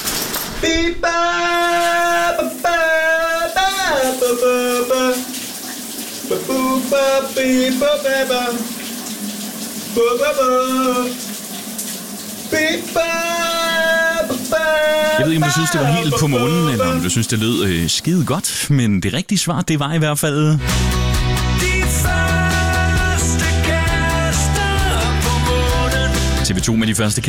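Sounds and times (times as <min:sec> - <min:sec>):
shower running: 0:00.0 - 0:18.6, 0:21.8 - 0:26.4
speech: 0:00.6 - 0:02.6, 0:06.5 - 0:08.7, 0:10.0 - 0:11.3, 0:12.5 - 0:13.5, 0:14.7 - 0:21.1, 0:26.6 - 0:27.2
person singing a wordless-sounding melody: 0:00.6 - 0:05.3, 0:06.3 - 0:08.6, 0:10.0 - 0:11.2, 0:12.5 - 0:17.7, 0:21.5 - 0:26.4.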